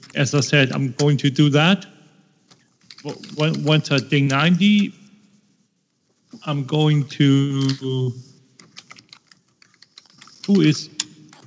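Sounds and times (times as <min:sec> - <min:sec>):
speech: 0:00.1 - 0:01.9, 0:03.0 - 0:05.0, 0:06.3 - 0:08.3, 0:10.5 - 0:11.0
forceful typing on a computer keyboard while replying in a chat room: 0:08.6 - 0:11.4.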